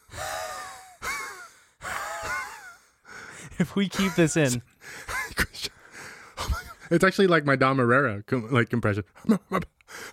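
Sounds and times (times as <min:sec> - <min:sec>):
person deliberately wheezing in the throat: 0:00.0 - 0:02.8
speech: 0:03.6 - 0:05.1, 0:06.9 - 0:09.7.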